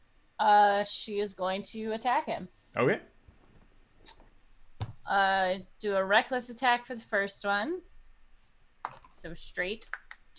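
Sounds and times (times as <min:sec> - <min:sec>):
speech: 0:00.4 - 0:03.1, 0:04.0 - 0:04.2, 0:05.1 - 0:07.9, 0:08.8 - 0:10.3
dice rolling on a table in a game: 0:08.8 - 0:09.2.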